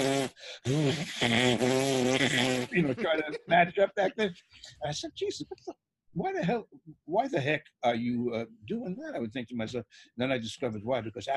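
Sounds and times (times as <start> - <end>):
person buzzing lips like a brass player: 0.0 - 3.3
speech: 0.3 - 11.3
laughter: 0.7 - 1.3, 2.2 - 6.6.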